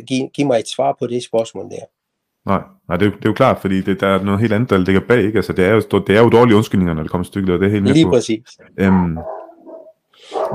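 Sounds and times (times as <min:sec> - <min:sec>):
speech: 0:00.0 - 0:09.4
dog barking: 0:08.9 - 0:10.5.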